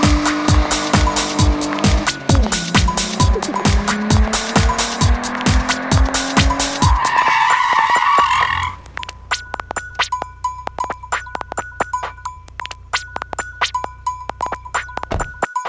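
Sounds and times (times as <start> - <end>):
car tires squealing pulling away from a traffic light: 0.0 - 11.2
rapid rhythmic car engine bursts: 0.0 - 15.6.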